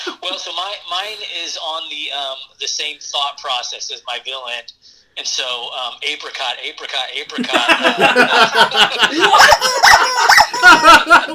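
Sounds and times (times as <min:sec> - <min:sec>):
speech: 0:00.1 - 0:11.3
laughter: 0:07.4 - 0:11.3
rubber chicken squawking in strained honks: 0:09.3 - 0:10.8.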